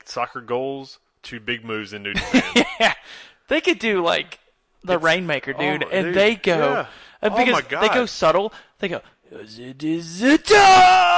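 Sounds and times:
speech: 0:00.1 - 0:11.1
man yelling loudly into a microphone: 0:05.6 - 0:08.2, 0:10.2 - 0:11.1.

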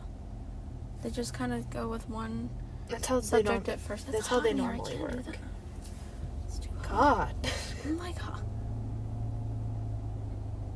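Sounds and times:
steady droning low rumble inside a parked car: 0:00.0 - 0:10.7
speech: 0:01.0 - 0:05.5, 0:06.9 - 0:08.5.

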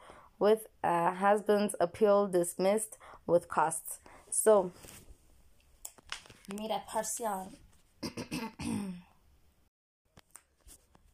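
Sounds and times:
speech: 0:00.4 - 0:05.0, 0:06.5 - 0:08.7
person clearing throat: 0:08.0 - 0:09.1.

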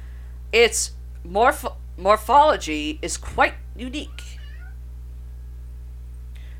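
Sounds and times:
low electrical hum: 0:00.0 - 0:06.5
speech: 0:00.5 - 0:04.4
pet cat meowing: 0:04.0 - 0:04.8.

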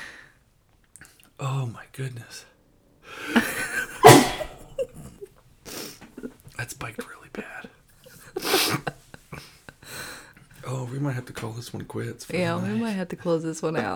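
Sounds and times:
quiet breaths: 0:00.0 - 0:13.4
speech: 0:01.4 - 0:02.5, 0:11.0 - 0:13.9
person sneezing: 0:04.0 - 0:04.8.

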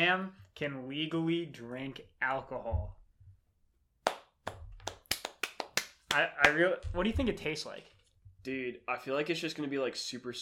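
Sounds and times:
speech: 0:00.0 - 0:03.0, 0:06.1 - 0:10.3
hand claps: 0:04.0 - 0:06.7.

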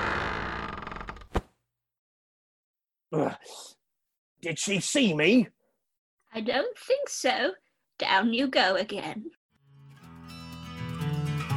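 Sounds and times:
cushioned door creaking shut: 0:00.0 - 0:01.5
speech: 0:03.1 - 0:03.8, 0:04.4 - 0:05.6, 0:06.3 - 0:09.4.

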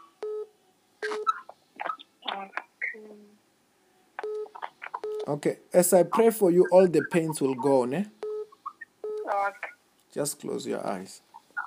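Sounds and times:
phone keypad beeps switching off speakerphone: 0:04.2 - 0:05.3, 0:08.2 - 0:09.6
speech: 0:05.3 - 0:08.2, 0:10.2 - 0:11.3.

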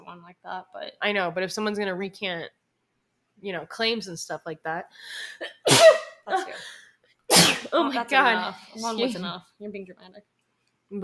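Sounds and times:
speech: 0:00.1 - 0:02.6, 0:03.4 - 0:06.8, 0:07.4 - 0:10.3
person sneezing: 0:05.6 - 0:06.5, 0:07.3 - 0:07.8.

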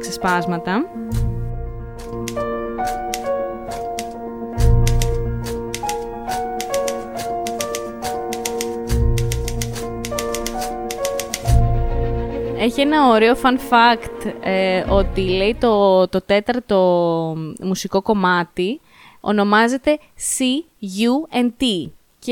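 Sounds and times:
speech: 0:00.0 - 0:01.2, 0:12.6 - 0:22.2
orchestral music bed with deep bass swells: 0:00.0 - 0:15.9
typewriter typing in film soundtrack: 0:02.0 - 0:11.6.

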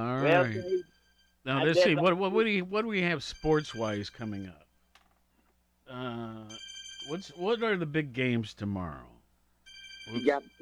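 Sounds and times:
speech: 0:00.0 - 0:04.6, 0:05.9 - 0:09.1, 0:10.1 - 0:10.6
mobile phone ringing with electronic ringtone: 0:00.2 - 0:02.0, 0:03.0 - 0:04.6, 0:06.0 - 0:07.8, 0:09.7 - 0:10.6.

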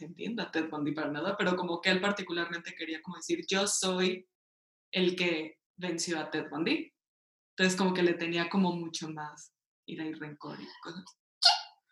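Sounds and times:
speech: 0:00.0 - 0:04.3, 0:04.9 - 0:07.0, 0:07.6 - 0:11.6
sneeze: 0:11.4 - 0:11.8.

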